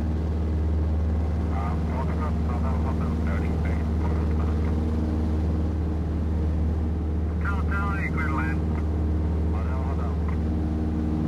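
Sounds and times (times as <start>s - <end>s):
cockpit ambience: 0.1s - 11.2s
cockpit radio communication: 1.4s - 5.0s, 7.3s - 10.5s.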